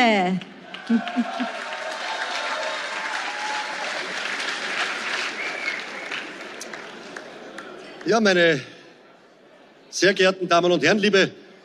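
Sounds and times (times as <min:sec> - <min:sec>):
speech: 0:00.0 - 0:01.6, 0:08.0 - 0:08.7, 0:09.9 - 0:11.4
large audience applause in a hall: 0:00.3 - 0:08.6
laughter: 0:00.7 - 0:01.9.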